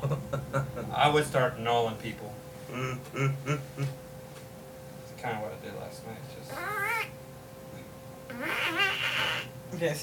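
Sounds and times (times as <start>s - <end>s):
faint steady hum: 0.0s - 10.0s
speech: 1.0s - 4.0s, 5.2s - 7.0s, 8.4s - 8.8s, 9.7s - 10.0s
cat yowling: 6.5s - 7.2s, 8.3s - 9.5s.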